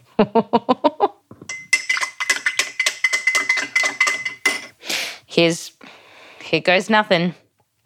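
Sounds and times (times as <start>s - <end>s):
speech: 0.2s - 0.8s, 5.4s - 5.7s, 6.5s - 7.4s
tablespoon clinking while stirring a pungent mixture: 1.5s - 4.8s.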